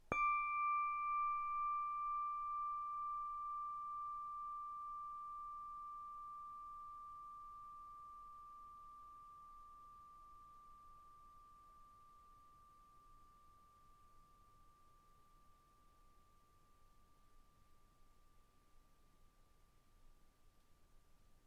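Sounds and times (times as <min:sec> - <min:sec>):
flat bell ringing D6: 0:00.0 - 0:16.6.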